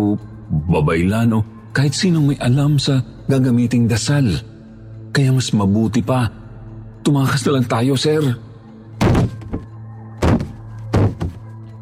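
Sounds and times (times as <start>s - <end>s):
speech: 0.0s - 4.5s, 5.1s - 6.4s, 7.0s - 8.4s
loud banging on a door: 9.0s - 11.4s.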